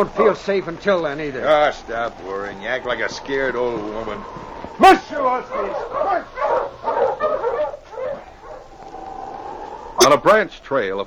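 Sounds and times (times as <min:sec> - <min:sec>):
speech: 0:00.0 - 0:06.3, 0:10.1 - 0:11.0
dog barking: 0:04.2 - 0:10.3.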